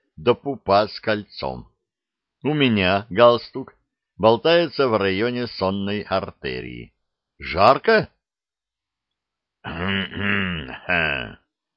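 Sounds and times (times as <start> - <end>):
speech: 0.2 - 1.7, 2.4 - 8.1, 9.6 - 11.4
marshal's throaty cough-like grunts: 9.7 - 11.4.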